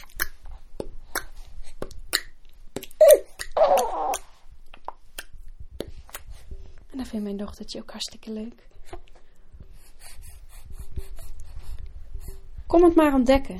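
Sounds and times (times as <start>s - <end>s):
wet tongue clicks and pops in the mouth: 0.0s - 6.3s
speech: 7.0s - 8.7s, 12.8s - 13.5s.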